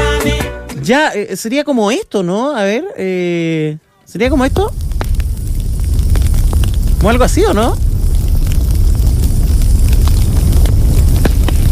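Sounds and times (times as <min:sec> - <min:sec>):
speech: 0:00.2 - 0:04.8, 0:07.0 - 0:07.9
fire roaring and crackling: 0:04.2 - 0:11.7.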